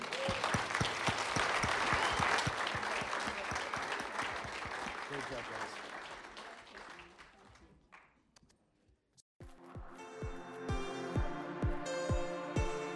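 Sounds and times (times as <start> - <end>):
church audience applauding: 0.0 - 8.1
music with a steady beat: 9.4 - 12.9.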